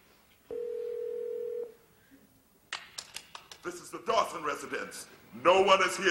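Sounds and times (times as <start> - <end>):
steady electronic ring tone of home phone call: 0.5 - 1.7
speech: 3.6 - 6.0.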